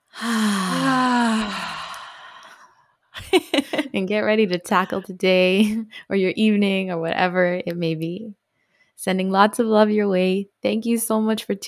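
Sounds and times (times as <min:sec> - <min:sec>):
deep sighing exhale after a breath in through the nose: 0:00.1 - 0:02.7
speech: 0:03.3 - 0:08.4, 0:09.0 - 0:11.6.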